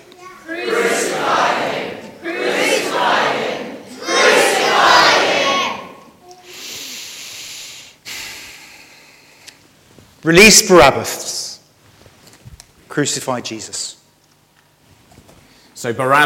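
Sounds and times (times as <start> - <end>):
large crowd roaring and shouting: 0.4 - 6.1
hiss: 6.4 - 9.3
speech: 10.3 - 11.3, 13.0 - 13.9, 15.8 - 16.2.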